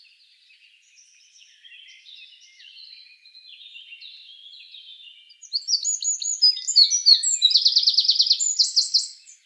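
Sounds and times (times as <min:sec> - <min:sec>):
Eurasian wren Troglodytes troglodytes singing: 0:05.4 - 0:09.4.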